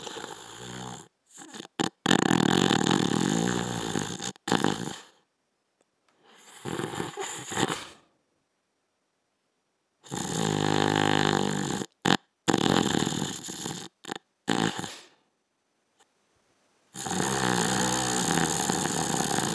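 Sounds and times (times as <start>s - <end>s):
man snoring: 0.0s - 5.2s, 6.4s - 8.0s, 10.1s - 15.1s, 17.0s - 19.5s.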